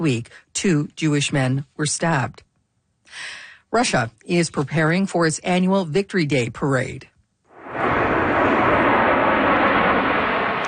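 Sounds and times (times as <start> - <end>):
speech: 0.0 - 2.5, 3.1 - 7.1
jet aircraft flying overhead: 7.5 - 10.6.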